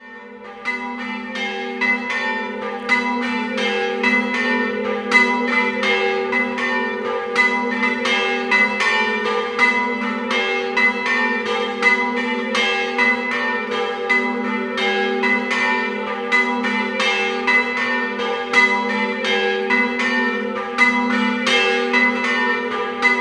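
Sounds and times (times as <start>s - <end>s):
church bells ringing in Cimpello: 0.1s - 23.1s.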